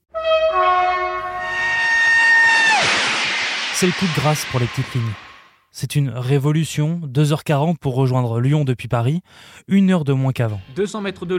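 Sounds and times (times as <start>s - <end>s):
high-speed train two-tone horn: 0.1s - 2.8s
high-speed train wind and rail noise roar: 1.8s - 5.6s
speech: 3.8s - 11.3s.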